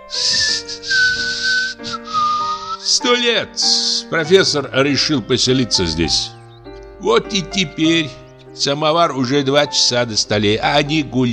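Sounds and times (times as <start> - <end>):
man whistling a tune: 0.0 - 3.0
speech: 3.0 - 6.4, 7.0 - 11.3.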